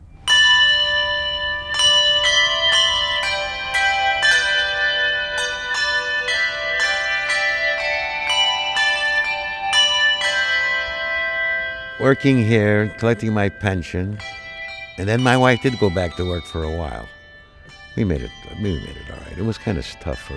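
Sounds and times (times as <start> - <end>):
church bell choir ringing a melody: 0.0 - 20.3
speech: 12.1 - 14.4, 15.0 - 17.2, 18.0 - 20.3.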